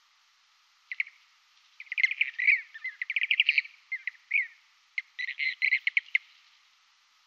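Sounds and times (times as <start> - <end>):
blue-cheeked bee-eater song of rolling burry chirps and trills: 1.8 - 6.3.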